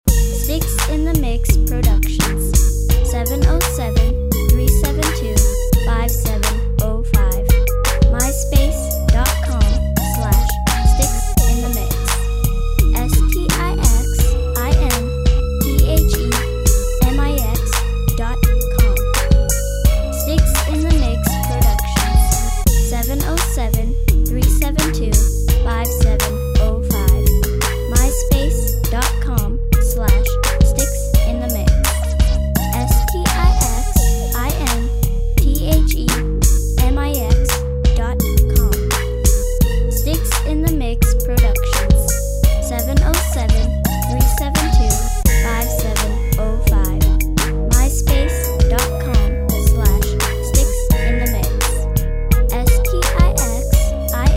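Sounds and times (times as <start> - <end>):
slap bass: 0.0 - 54.3.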